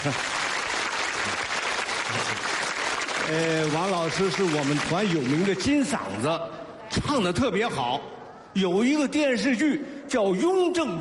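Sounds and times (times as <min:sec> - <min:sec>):
speech: 0:00.0 - 0:00.4, 0:03.2 - 0:11.0
audience applause: 0:00.0 - 0:06.2.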